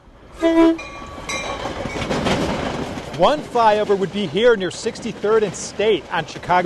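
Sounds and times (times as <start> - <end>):
commuter train rail cars rumbling and rattling past on tracks: 0.0 - 6.6
commuter train horn blast: 0.4 - 0.9
speech: 0.4 - 1.0, 3.2 - 6.6.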